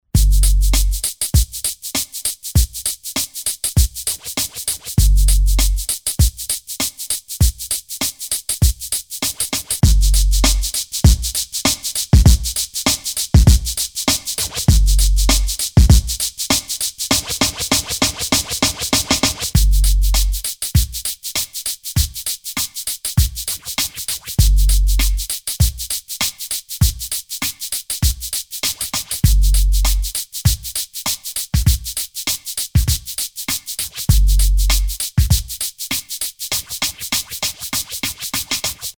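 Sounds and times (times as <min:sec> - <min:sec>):
nuskool beat on a drum machine sampler: 0:00.0 - 0:38.9.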